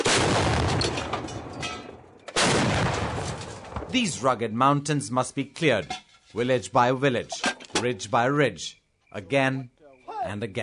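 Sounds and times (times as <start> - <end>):
heavy detonation: 0.0 - 1.2, 2.4 - 3.3
130mm artillery shells being fired: 0.0 - 3.9
speech: 3.9 - 10.6.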